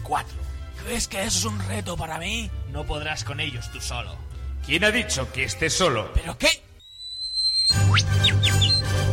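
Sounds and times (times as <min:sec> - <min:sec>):
speech: 0:00.1 - 0:06.6, 0:08.0 - 0:08.3
pigeon squawking in short high falling calls: 0:07.1 - 0:09.0.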